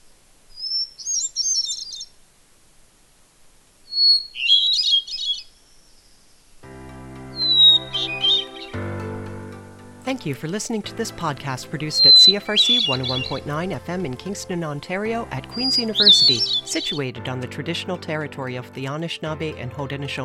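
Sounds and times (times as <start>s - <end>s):
hermit thrush song in spring: 6.6s - 18.9s
speech: 10.1s - 20.2s.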